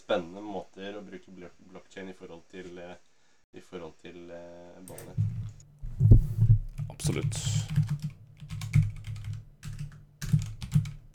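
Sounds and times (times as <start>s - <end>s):
speech: 0.1s - 6.2s, 7.0s - 8.2s
computer keyboard typing: 4.9s - 11.1s.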